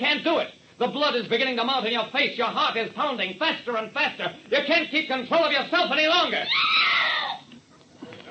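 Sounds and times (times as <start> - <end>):
speech: 0.0 - 7.0
woman screaming shrilly: 6.4 - 7.5.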